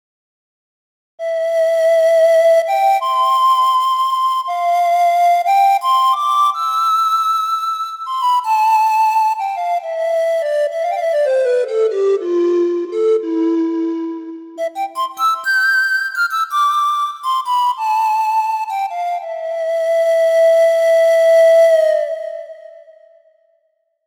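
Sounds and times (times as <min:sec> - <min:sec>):
pan flute: 0:01.2 - 0:23.4.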